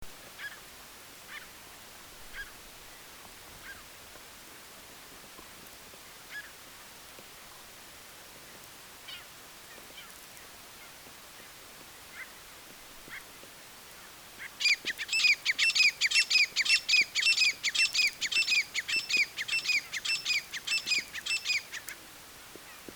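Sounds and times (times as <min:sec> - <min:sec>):
black francolin calling: 0:14.4 - 0:21.9.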